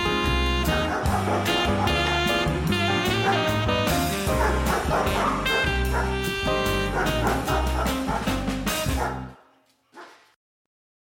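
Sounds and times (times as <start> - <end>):
music-like tones: 0.0 - 9.4
dog barking and yipping: 0.7 - 2.5, 3.1 - 3.6, 4.3 - 10.4.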